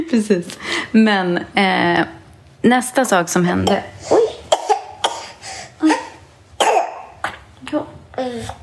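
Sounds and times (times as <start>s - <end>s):
speech: 0.0s - 4.2s
young boy coughing in harsh bursts: 4.1s - 7.4s.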